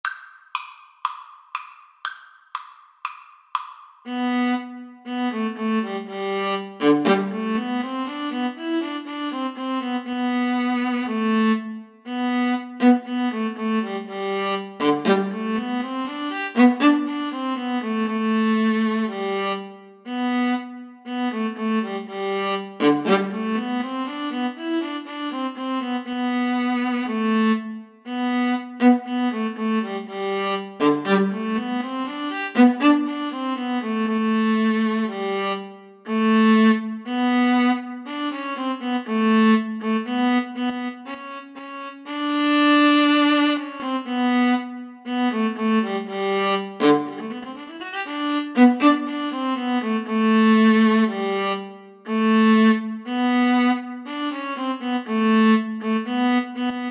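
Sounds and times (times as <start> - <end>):
viola and cello duet: 4.1 - 56.8.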